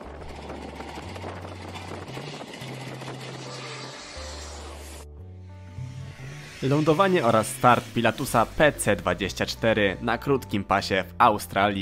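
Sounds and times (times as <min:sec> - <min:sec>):
aircraft engine roar as an airplane lands on a runway under renovation: 0:00.0 - 0:09.4
low droning hum: 0:00.0 - 0:09.7
speech: 0:06.6 - 0:11.8.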